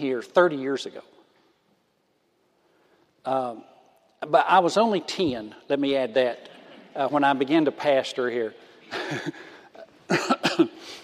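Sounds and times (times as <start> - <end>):
speech: 0.0 - 1.2, 3.2 - 9.5, 10.1 - 11.0
pastor coughing sharply: 8.9 - 10.9.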